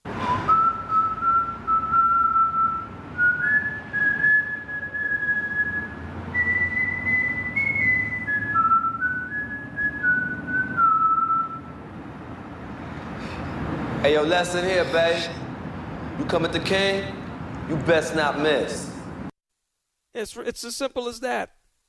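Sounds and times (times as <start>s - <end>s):
person whistling a slow sustained tune: 0.1s - 11.7s
speech: 14.1s - 15.4s, 16.2s - 18.9s, 20.2s - 21.6s.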